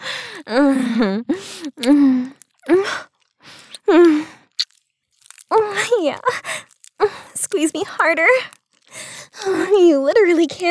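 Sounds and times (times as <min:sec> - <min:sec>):
person panting heavily: 0:00.0 - 0:01.7, 0:08.9 - 0:09.7
breathy gasps: 0:00.0 - 0:04.6, 0:06.3 - 0:07.4, 0:08.8 - 0:09.8
speech: 0:00.4 - 0:03.0, 0:07.8 - 0:08.6, 0:09.4 - 0:10.6.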